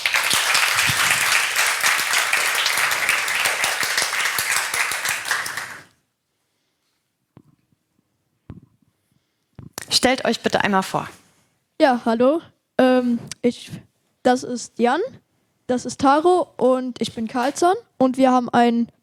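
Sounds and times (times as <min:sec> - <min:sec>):
crowd applauding for a youth group: 0:00.0 - 0:05.9
speech: 0:10.0 - 0:11.2, 0:11.8 - 0:19.0.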